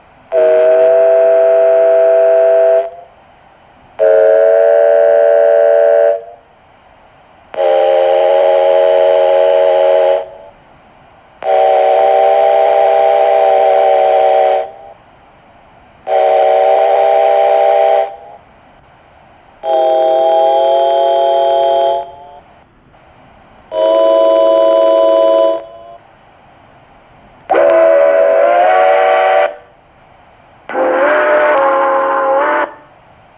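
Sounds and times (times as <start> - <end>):
North American locomotive whistles: 0.3 - 3.2, 4.0 - 6.5, 7.5 - 10.6, 11.4 - 15.1, 16.0 - 18.5, 19.6 - 22.5, 23.7 - 26.1, 27.5 - 29.8, 30.7 - 33.1.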